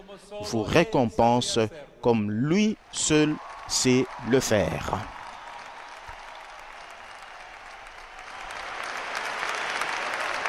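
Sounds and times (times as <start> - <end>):
speech: 0.2 - 5.2
sustained dense applause from a large crowd: 2.8 - 10.4.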